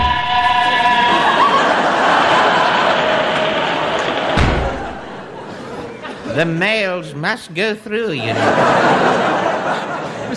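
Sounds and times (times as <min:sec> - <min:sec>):
whistle-like tone: 0:00.0 - 0:01.7
train roaring past through a cellar: 0:00.0 - 0:05.5
laughter: 0:00.0 - 0:06.6, 0:08.1 - 0:10.3
heavy thud: 0:04.4 - 0:05.3
speech: 0:06.4 - 0:10.3.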